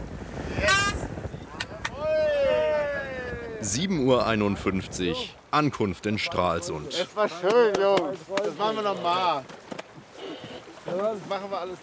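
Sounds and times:
wind and spray rushing around a racing sailboat: 0.0s - 5.5s
speech: 3.6s - 9.7s, 10.9s - 11.8s
sailboat crew voices: 10.1s - 10.7s.

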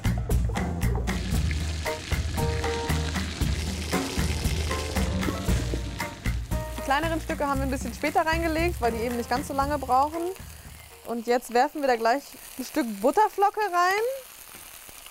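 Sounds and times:
fish fillets frying skin-side down in oil in a hot pan: 0.1s - 15.0s
speech: 7.0s - 10.5s, 11.1s - 14.2s.

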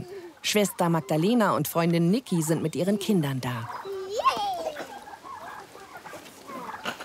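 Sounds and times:
chickens clucking: 0.0s - 7.0s
speech: 0.4s - 3.8s
chicken squawk: 3.6s - 7.0s.

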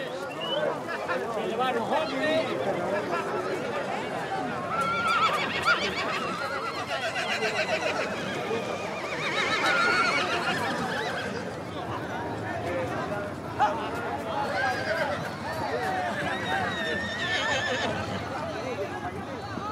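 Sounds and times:
people talking: 0.0s - 19.6s
mares neighing: 4.4s - 11.7s, 14.4s - 18.5s.

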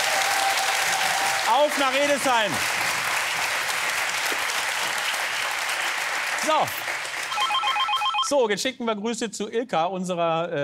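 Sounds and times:
studio audience applause: 0.0s - 8.2s
speech: 1.5s - 2.7s, 6.4s - 6.8s, 8.3s - 10.6s.

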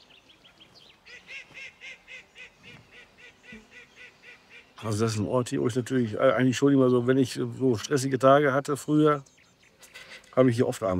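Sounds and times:
ducks quacking on a farm duck pond: 0.0s - 5.2s, 9.8s - 10.4s
faint noise: 0.0s - 10.9s
speech: 4.8s - 9.4s, 10.4s - 10.9s.

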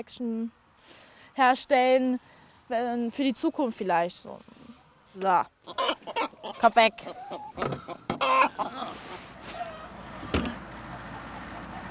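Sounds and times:
speech: 0.0s - 4.6s, 5.2s - 8.0s
chickens clucking: 4.5s - 10.6s.

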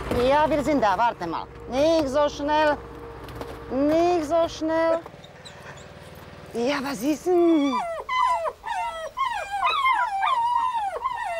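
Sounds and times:
speech: 0.2s - 2.9s, 3.7s - 5.1s, 6.5s - 7.9s
puppies whimpering and yipping as they greet an older dog: 5.2s - 6.1s, 7.3s - 11.3s.

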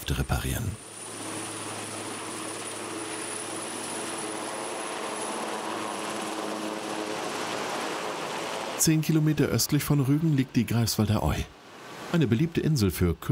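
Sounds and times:
helicopter engine and rotor flying overhead: 0.0s - 10.5s
speech: 0.1s - 0.9s, 8.8s - 13.3s.

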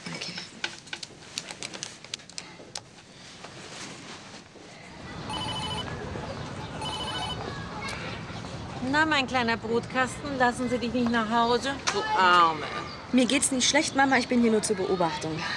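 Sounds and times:
outgoing call ringback tone: 5.3s - 5.9s, 6.8s - 7.4s
speech: 8.9s - 15.5s.

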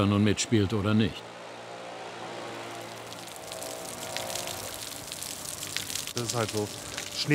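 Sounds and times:
speech: 0.0s - 1.4s, 6.2s - 7.3s
steady rain: 2.5s - 7.3s.

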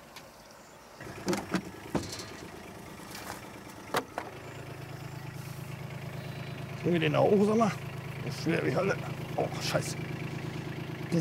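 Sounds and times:
sharp clunks and knocks: 1.0s - 4.4s
car engine idling with a steady low rumble: 1.0s - 11.1s
speech: 6.8s - 10.2s.

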